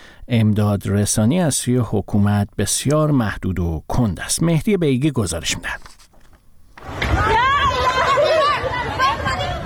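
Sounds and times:
speech: 0.3s - 6.0s
agitated crowd of flood victims shouting and crying in Dashtiari Sistan and Baluchestan: 7.0s - 9.6s.

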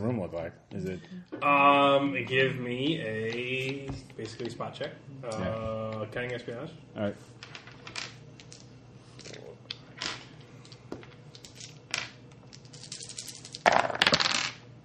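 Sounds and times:
speech: 0.0s - 7.6s
quarter coins dropping and clattering onto a floor: 7.4s - 9.4s, 10.0s - 14.6s.

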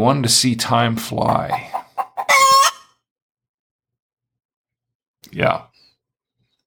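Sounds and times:
speech: 0.0s - 1.8s, 5.3s - 5.7s
rooster crowing: 1.6s - 2.9s.

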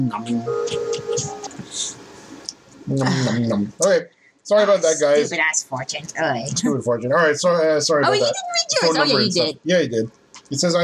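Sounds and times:
speech: 0.0s - 2.0s, 2.9s - 10.8s
steady hum: 0.0s - 10.8s
phone short electronic ringtone: 0.2s - 1.5s.

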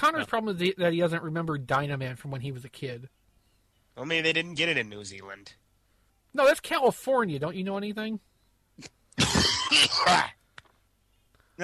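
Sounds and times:
speech: 0.0s - 3.2s, 4.0s - 5.6s, 6.3s - 10.4s
harsh rasping coughing: 8.8s - 10.4s.

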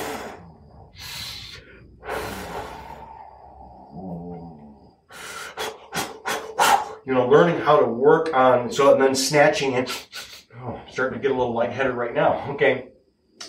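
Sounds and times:
forceful breaths through the nose and mouth in a breath of fire exercise: 0.0s - 7.1s
speech: 7.1s - 10.2s, 11.0s - 12.9s.

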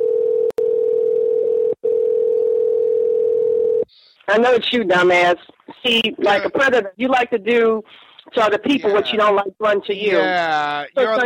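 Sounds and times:
telephone dial tone of an outgoing call: 0.0s - 3.8s
speech: 4.3s - 11.2s.

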